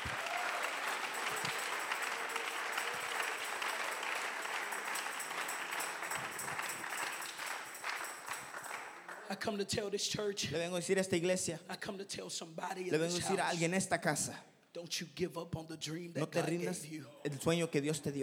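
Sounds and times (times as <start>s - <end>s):
audience clapping hands: 0.0s - 9.6s
speech: 9.3s - 18.2s.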